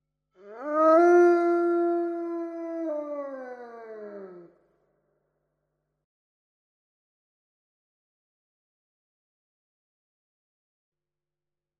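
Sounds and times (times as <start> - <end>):
howl sound effect: 0.4 - 4.5.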